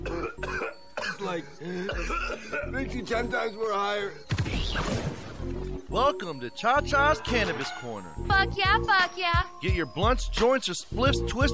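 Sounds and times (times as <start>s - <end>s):
harsh coughs: 0.0s - 2.8s
throat clearing: 0.0s - 2.9s
laughter: 1.1s - 3.4s, 6.9s - 8.5s
speech: 1.2s - 11.5s.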